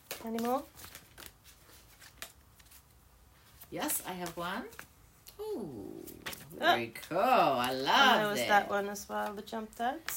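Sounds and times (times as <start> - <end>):
deck of intuitive healing cards being shuffled: 0.0 - 7.9
speech: 0.2 - 1.0, 3.7 - 10.1.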